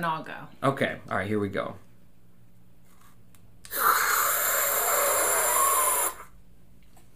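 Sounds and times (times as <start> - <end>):
speech: 0.0 - 1.8
oxygen hissing from a squeeze-trigger canister during inhalation: 3.7 - 6.3.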